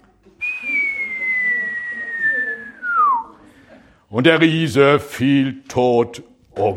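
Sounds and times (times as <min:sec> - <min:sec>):
faint murmuring voices: 0:00.0 - 0:06.7
person whistling imitating a stone from a sling flying through the air: 0:00.4 - 0:03.3
speech: 0:04.1 - 0:06.7.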